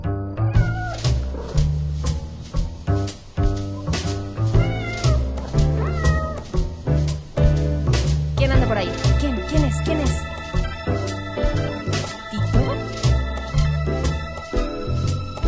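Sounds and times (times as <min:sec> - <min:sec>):
cat meowing: 0:00.4 - 0:01.6, 0:04.5 - 0:06.6
bouncy rhythmic music track: 0:00.4 - 0:15.4.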